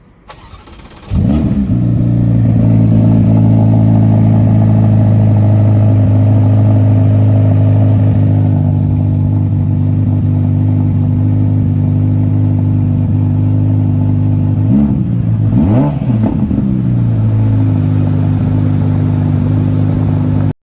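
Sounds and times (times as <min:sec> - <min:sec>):
Ferrari Portofino engine: 0:00.2 - 0:20.5.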